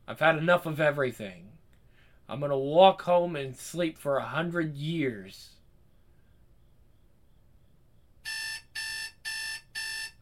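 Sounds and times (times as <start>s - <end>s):
speech: 0.1s - 1.5s, 2.3s - 5.6s
phone alarm ringing in electronic beeps: 8.2s - 10.2s.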